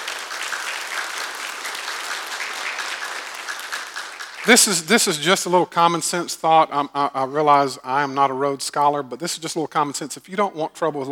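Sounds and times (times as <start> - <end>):
crowd applauding: 0.0 - 5.1
speech: 4.4 - 11.1.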